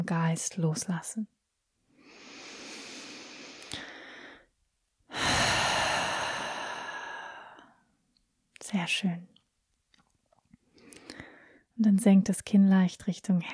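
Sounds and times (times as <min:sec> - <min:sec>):
speech: 0:00.0 - 0:01.4, 0:08.7 - 0:09.4, 0:11.8 - 0:13.5
slow breathing during a guided relaxation exercise: 0:01.9 - 0:04.5, 0:05.1 - 0:07.8, 0:10.7 - 0:11.7.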